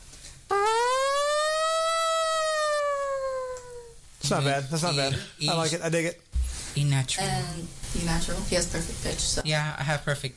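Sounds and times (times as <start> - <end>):
person vocally imitating a siren: 0.5 - 4.0
speech: 4.3 - 10.3.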